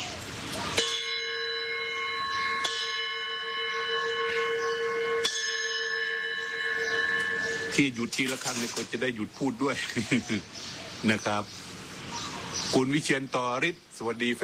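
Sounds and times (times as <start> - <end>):
metal bell struck to start class: 0.8 - 8.8
speech: 7.8 - 11.6, 12.7 - 14.4.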